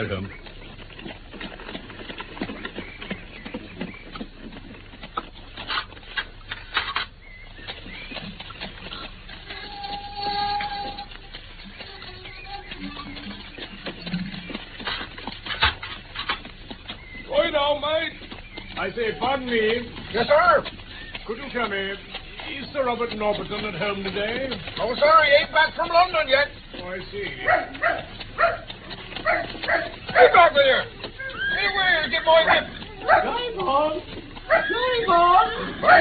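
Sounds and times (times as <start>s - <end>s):
speech: 0.0s - 0.5s, 18.9s - 28.1s, 30.2s - 30.9s, 32.2s - 34.0s
horse hooves clip-clopping in a driveway: 0.0s - 35.9s
horse-drawn carriage wheels rattling: 8.0s - 35.9s
dog barking: 27.4s - 30.3s, 32.5s - 33.4s, 34.5s - 34.7s.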